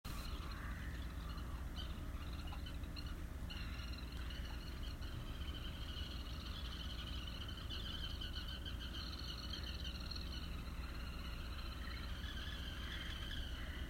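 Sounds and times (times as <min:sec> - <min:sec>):
birds chirping at a harbour: 0:00.0 - 0:13.8.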